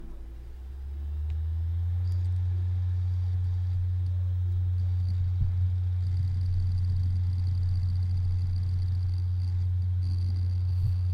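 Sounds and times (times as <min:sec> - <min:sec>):
hard drive spinning up: 0:00.0 - 0:11.1.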